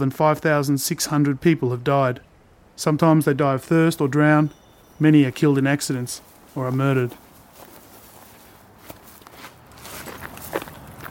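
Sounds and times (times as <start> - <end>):
speech: 0.0 - 7.2
constant outdoor noise in El Paso Texas: 0.0 - 11.0
footsteps of people walking outdoors in El Paso Texas: 3.7 - 11.0.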